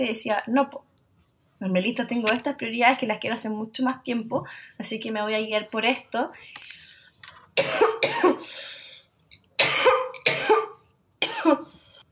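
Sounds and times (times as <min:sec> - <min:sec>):
speech: 0:00.0 - 0:00.9, 0:01.6 - 0:06.7, 0:07.6 - 0:08.8, 0:11.4 - 0:11.7
person coughing harshly: 0:07.6 - 0:08.6, 0:09.6 - 0:11.8.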